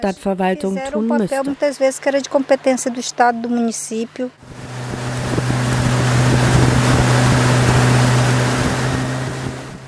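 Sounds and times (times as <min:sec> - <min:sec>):
speech: 0:00.0 - 0:04.7
motorboat engine cruising over a river: 0:00.5 - 0:09.8
water splashing: 0:04.4 - 0:09.6
wind rushing: 0:04.4 - 0:09.8.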